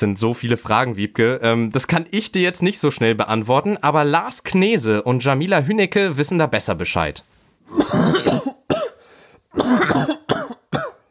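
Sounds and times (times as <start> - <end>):
speech: 0.0 - 8.5, 9.6 - 10.2
person coughing hard with harsh chesty bursts: 7.7 - 11.1
wheezy breath: 8.9 - 9.5.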